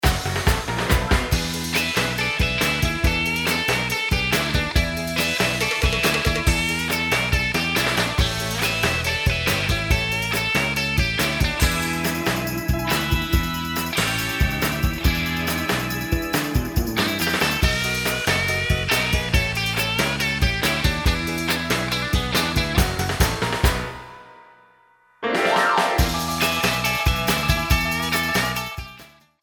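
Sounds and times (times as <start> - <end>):
surf rock music: 0.0 - 24.2, 25.3 - 29.1.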